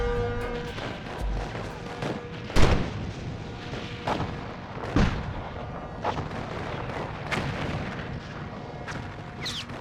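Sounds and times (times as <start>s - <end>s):
rumbling crackling cannon barrage: 0.5s - 9.7s
cannon fire from English warships in a sea battle: 1.4s - 3.3s, 3.9s - 8.4s.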